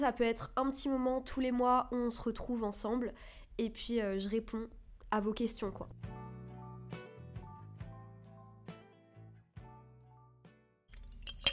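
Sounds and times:
speech: 0.0 - 6.2
ice cubes clinking in a glass of iced coffee: 10.9 - 11.5.

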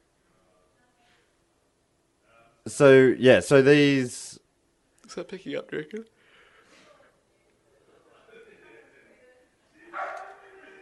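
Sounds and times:
speech: 2.6 - 4.2, 5.1 - 6.2
low voices: 6.5 - 10.8
dogs barking faintly: 9.9 - 10.5.

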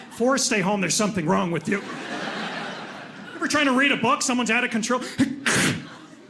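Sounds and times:
speech: 0.2 - 2.2, 3.5 - 5.4
laughter: 1.6 - 4.0, 5.4 - 6.2
sneeze: 5.2 - 5.9.

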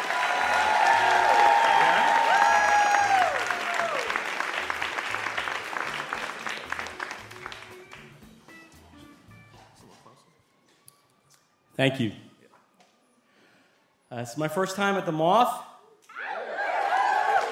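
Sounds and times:
audience applause at a live storytelling show: 0.0 - 8.1, 16.2 - 17.5
speech: 11.8 - 12.2, 14.2 - 15.7.

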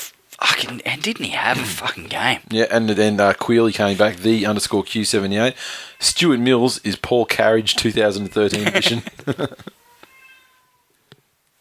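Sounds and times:
speech: 0.4 - 9.8
cat meowing loudly: 7.7 - 9.0, 9.8 - 10.9
laughter: 8.1 - 9.8.

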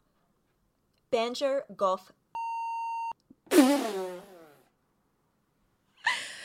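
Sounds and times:
speech: 1.1 - 2.2
censor beep over a spoken last name: 2.4 - 3.2.

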